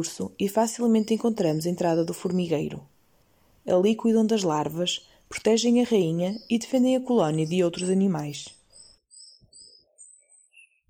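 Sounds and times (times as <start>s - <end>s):
thin bird calls and song: 0.0s - 2.8s, 4.2s - 10.8s
speech: 0.0s - 2.9s, 3.6s - 8.6s.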